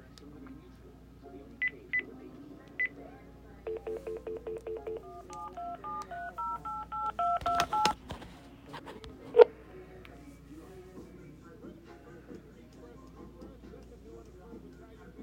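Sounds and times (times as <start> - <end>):
telephone keypad tones: 3.7 - 8.0.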